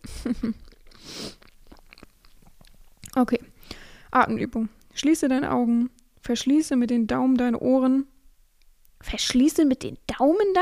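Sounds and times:
person chewing a piece of banana: 0.0s - 3.2s
speech: 0.2s - 1.4s, 3.2s - 3.5s, 4.1s - 8.1s, 9.0s - 10.6s.

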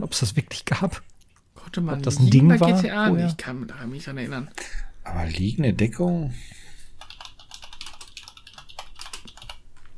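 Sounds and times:
speech: 0.1s - 6.6s
typing on a computer keyboard: 7.0s - 9.9s.

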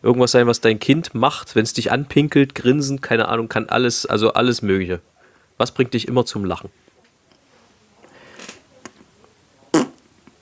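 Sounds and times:
speech: 0.0s - 6.8s
small scattered noises: 0.0s - 10.3s
short loud fart: 9.7s - 10.0s.

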